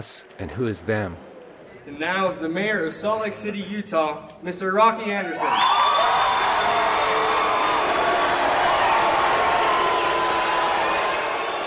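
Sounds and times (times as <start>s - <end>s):
speech: 0.0s - 6.8s
large crowd cheering and roaring: 5.2s - 11.6s.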